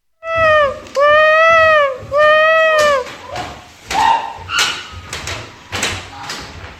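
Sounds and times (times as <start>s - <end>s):
child imitating an elephant trumpeting: 0.2s - 3.4s
children making animal sounds during a story reading: 0.2s - 5.0s
clattering and rustling noises: 3.0s - 6.7s.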